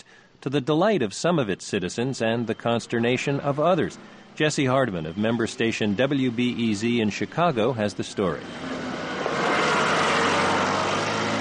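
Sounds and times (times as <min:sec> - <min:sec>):
speech: 0:00.4 - 0:08.8
heavy machinery rumbling at a construction site: 0:01.7 - 0:11.4.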